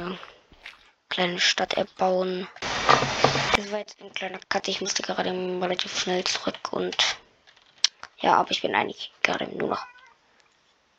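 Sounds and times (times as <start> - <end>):
speech: 1.1 - 7.2, 8.2 - 9.9
pet cat meowing: 9.8 - 10.2.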